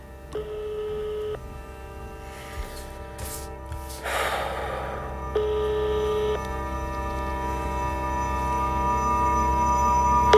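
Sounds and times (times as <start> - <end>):
steady low hum: 0.0 - 10.3
short breathy rustle: 1.4 - 6.4
phone line ringback tone from a call to a night watchman's number: 5.4 - 6.4.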